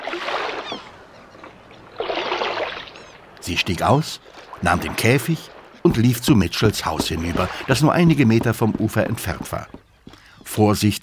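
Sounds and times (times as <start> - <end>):
oars rowing a small outboard boat through water: 0.0 - 10.5
speech: 3.4 - 9.8, 10.5 - 11.0.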